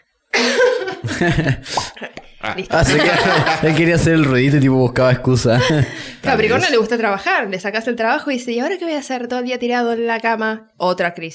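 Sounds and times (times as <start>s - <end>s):
person coughing: 0.4s - 2.2s
laughter: 0.4s - 4.4s, 5.3s - 6.7s
speech: 1.1s - 11.3s.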